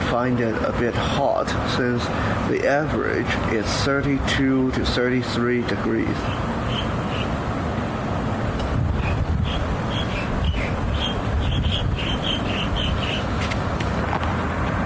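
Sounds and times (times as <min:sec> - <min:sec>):
traffic: 0:00.0 - 0:14.8
wind: 0:00.0 - 0:14.8
speech: 0:00.1 - 0:06.6
small birds chirping outdoors: 0:06.2 - 0:07.4, 0:09.0 - 0:13.5.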